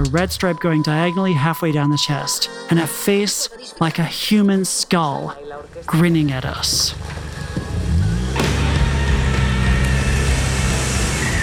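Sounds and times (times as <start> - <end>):
speech: 0.1 - 7.2
tires spinning and churning loose dirt: 5.7 - 11.4
car engine revving while reversing: 6.5 - 11.4.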